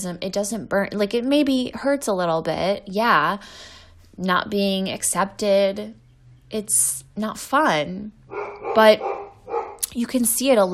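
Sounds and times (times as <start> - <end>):
speech: 0.0 - 9.2, 10.0 - 10.7
male dog barking: 8.3 - 9.8.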